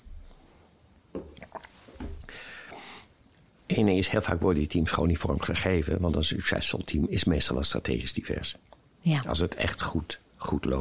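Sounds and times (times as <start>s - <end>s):
person swallowing water: 1.2s - 2.3s
person sipping water: 1.2s - 3.5s
speech: 3.7s - 10.7s.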